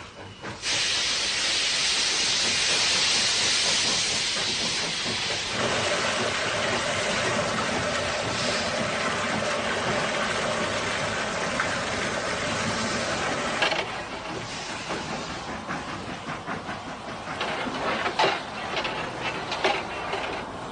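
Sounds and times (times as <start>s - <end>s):
noisy 1950s-built steam locomotive of a common Chinese type hissing: 0.0s - 20.7s.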